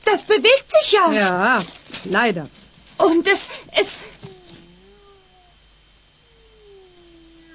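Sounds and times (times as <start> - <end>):
steady hiss: 0.0 - 7.5
speech: 0.1 - 4.2
kitten meowing: 4.2 - 5.6, 6.2 - 7.5.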